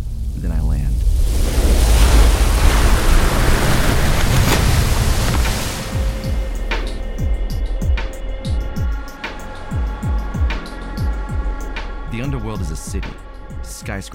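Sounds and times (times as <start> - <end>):
rhythmic low thuds: 0.0 - 14.1
rush of surging water: 1.0 - 6.7.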